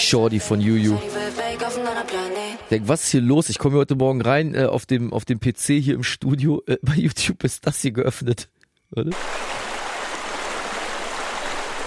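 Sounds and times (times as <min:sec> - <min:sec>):
speech: 0:00.1 - 0:09.5
small forest stream flowing: 0:09.1 - 0:11.8.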